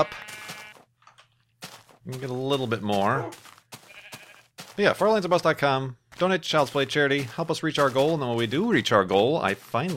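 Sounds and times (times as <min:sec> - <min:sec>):
speech: 0:00.0 - 0:00.3, 0:02.1 - 0:03.5, 0:04.8 - 0:09.9
buzzy video game sheep bleating: 0:00.0 - 0:00.9, 0:03.1 - 0:04.6.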